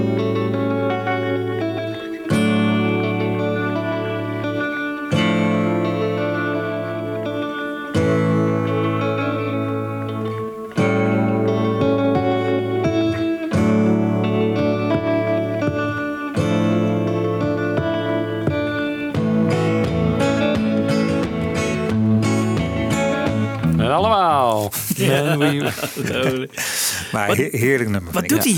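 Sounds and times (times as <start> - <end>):
electric guitar with tremolo effect playing chords: 0.0 - 24.4
laughter: 24.4 - 28.5
speech: 25.3 - 28.5.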